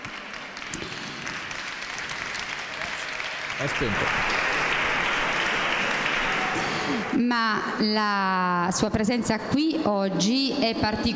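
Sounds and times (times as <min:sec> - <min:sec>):
crowd applauding: 0:00.0 - 0:07.2
speech: 0:03.6 - 0:04.4, 0:06.9 - 0:11.1.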